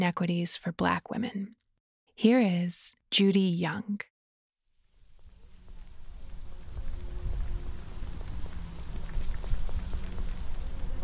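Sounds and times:
speech: 0.0 - 1.6, 2.2 - 4.1
light drizzle falling on surfaces: 4.8 - 11.0.

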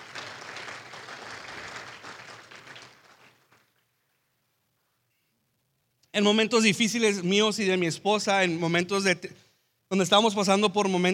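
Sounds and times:
crowd applauding with dense clapping: 0.0 - 3.9
speech: 6.2 - 11.1.

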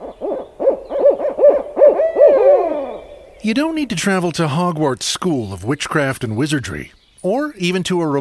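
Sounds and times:
owl hooting rapidly, rising and falling: 0.0 - 4.0
speech: 3.4 - 8.2.

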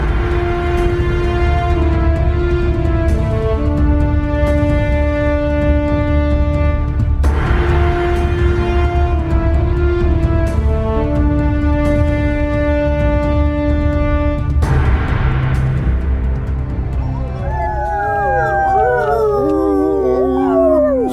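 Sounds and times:
steady droning musical background: 0.0 - 21.1
several long wavering howls: 17.1 - 21.1.

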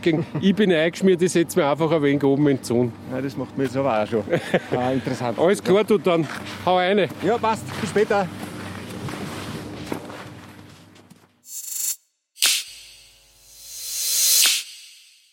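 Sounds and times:
laughter: 0.0 - 0.6, 4.2 - 5.4
speech: 0.0 - 8.5
brisk footsteps of a person walking uphill toward a mountain lift top station: 6.2 - 11.4
bursts of hissing airy noise: 11.5 - 15.2.

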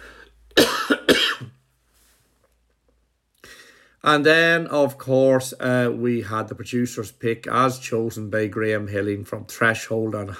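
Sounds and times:
quiet breath: 0.0 - 0.5, 3.4 - 4.0
loud forceful coughs: 0.6 - 1.6
speech: 4.0 - 10.3.

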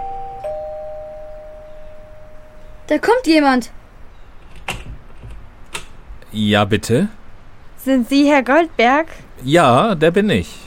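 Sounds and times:
doorbell ringing at a house entrance on a cold evening: 0.0 - 2.6
speech: 2.9 - 3.8, 6.3 - 7.2, 7.8 - 10.6.

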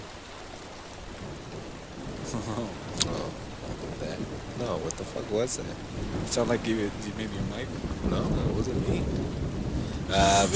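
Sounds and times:
heavy rain: 0.0 - 10.5
low thunder rumble from nearby lightning storm: 1.0 - 10.5
speech: 2.4 - 2.8, 4.6 - 9.5, 10.1 - 10.5.

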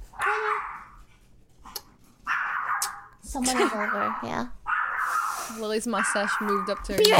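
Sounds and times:
dog barking: 2.3 - 7.1
speech: 3.3 - 4.6, 5.5 - 7.1.

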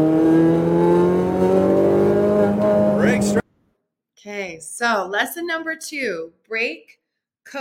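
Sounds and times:
race car engine accelerating on track: 0.0 - 3.4
speech: 4.6 - 7.5.

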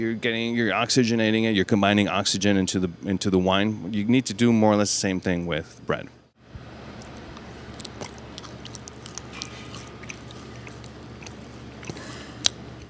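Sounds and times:
speech: 0.0 - 6.2
chewing bread: 7.0 - 12.8.

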